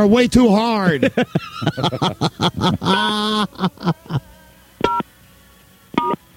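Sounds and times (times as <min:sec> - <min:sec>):
speech: 0:00.0 - 0:04.2
laughter: 0:00.8 - 0:04.4
touch-tone phone keypad beeps entering a number into an automated phone service: 0:04.8 - 0:05.0, 0:06.0 - 0:06.2
short tonal blips: 0:04.8 - 0:05.1, 0:05.9 - 0:06.2.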